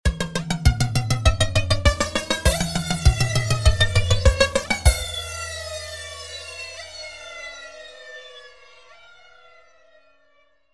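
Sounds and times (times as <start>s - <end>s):
drums with flanger effect: 0.1s - 8.6s.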